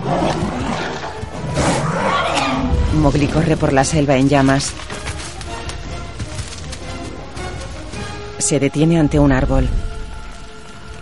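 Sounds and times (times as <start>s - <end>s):
big cat roaring and snarling as wolves attack and pin it down: 0.0s - 3.0s
speech: 3.0s - 5.0s, 8.5s - 9.8s.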